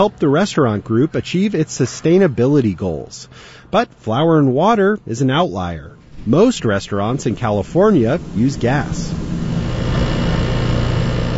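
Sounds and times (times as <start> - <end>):
speech: 0.0 - 9.3
lab equipment humming and whirring as sensors are calibrated: 0.0 - 11.3.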